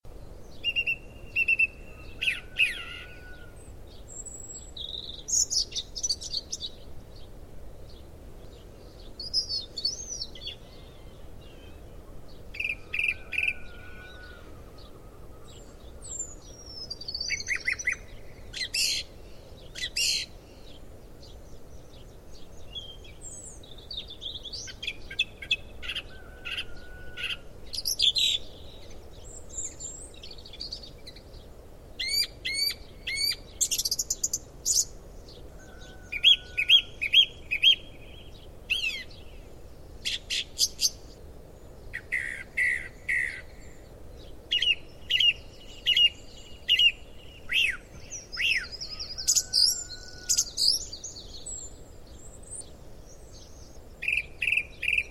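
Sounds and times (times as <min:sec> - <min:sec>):
song thrush singing: 0:00.1 - 0:55.1.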